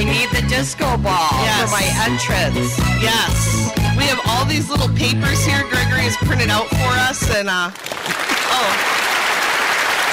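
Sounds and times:
speech: 0:00.6 - 0:09.1
applause from a clapping audience: 0:07.8 - 0:10.1.

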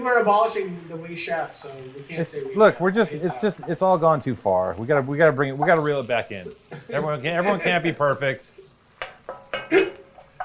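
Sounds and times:
speech: 0:00.0 - 0:08.6, 0:09.7 - 0:09.9
utensil knocking and scraping a pan while stirring food: 0:09.0 - 0:10.4.

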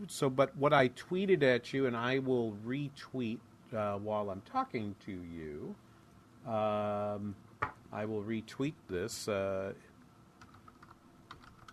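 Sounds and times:
speech: 0:00.0 - 0:05.8, 0:06.4 - 0:09.9
typing on a computer keyboard: 0:10.4 - 0:11.7.

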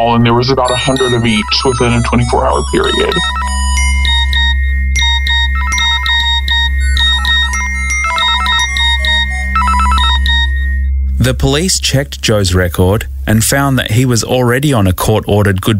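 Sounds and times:
speech: 0:00.0 - 0:03.8, 0:11.2 - 0:15.7
steady low hum: 0:00.0 - 0:15.7
loud electronic phone ringtone: 0:00.4 - 0:11.2.

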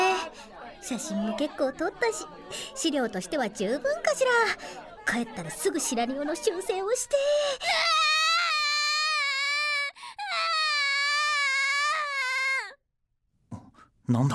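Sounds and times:
speech: 0:00.9 - 0:07.8, 0:14.1 - 0:14.3
lost child wailing at an amusement park: 0:07.6 - 0:12.8.

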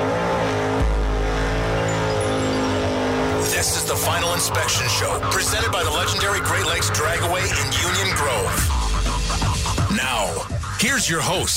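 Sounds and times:
race car engine revving: 0:00.0 - 0:10.8
speech: 0:04.4 - 0:08.8, 0:09.9 - 0:11.5.

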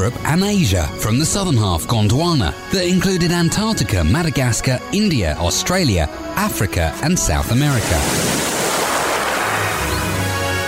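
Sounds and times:
speech: 0:00.0 - 0:08.5
ocean waves breaking on a shore: 0:07.5 - 0:10.6.

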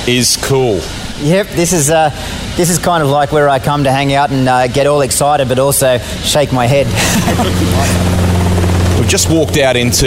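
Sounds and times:
speech: 0:00.0 - 0:08.2, 0:09.0 - 0:10.0
Robinson helicopter engine and rotor hum during takeoff: 0:00.7 - 0:10.0
person laughing: 0:06.8 - 0:08.2.

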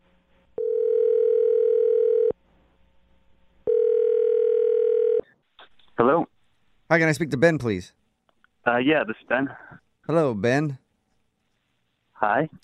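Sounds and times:
telephone dial tone: 0:00.6 - 0:02.3, 0:03.7 - 0:05.2
speech: 0:06.9 - 0:08.0, 0:08.6 - 0:10.8, 0:12.2 - 0:12.6.

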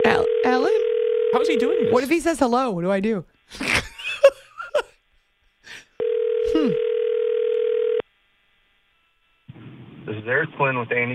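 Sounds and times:
phone ring tone over a phone line: 0:00.0 - 0:02.1, 0:06.0 - 0:08.0
speech: 0:01.4 - 0:03.9, 0:10.3 - 0:11.1.

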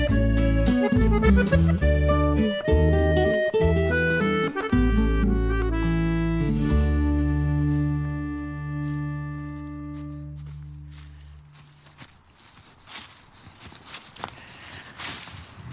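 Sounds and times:
sustained musical tone: 0:00.0 - 0:11.8
footsteps shuffling through dry fallen leaves in a forest: 0:06.6 - 0:15.7.

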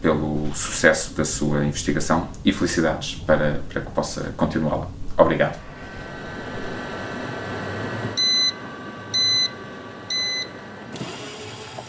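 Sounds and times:
speech: 0:00.0 - 0:05.7
laboratory centrifuge humming while spinning to disaggregate zebrafish marrow tissue: 0:00.0 - 0:11.8
electronic beeps: 0:08.2 - 0:08.6, 0:09.2 - 0:09.5.

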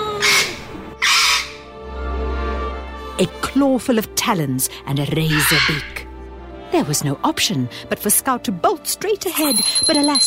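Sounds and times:
dizzy-colored parrot with red-rimmed eyes shrieking: 0:00.2 - 0:01.7, 0:05.3 - 0:06.0
speech: 0:03.2 - 0:06.0, 0:06.7 - 0:10.2.

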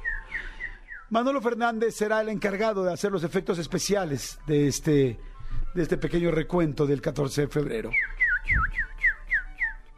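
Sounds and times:
radio announcer whistling an imitation of birdsong: 0:00.0 - 0:01.1, 0:07.9 - 0:09.9
speech: 0:01.1 - 0:08.9.

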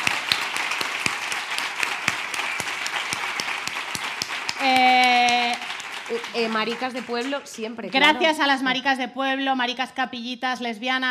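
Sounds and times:
audience applause: 0:00.0 - 0:08.2
speech: 0:06.2 - 0:11.0.

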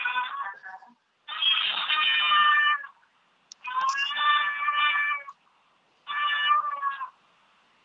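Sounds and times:
cat giving loud drawn-out demanding meows for attention: 0:00.0 - 0:00.6, 0:01.3 - 0:03.0, 0:03.6 - 0:05.4, 0:06.1 - 0:07.2.

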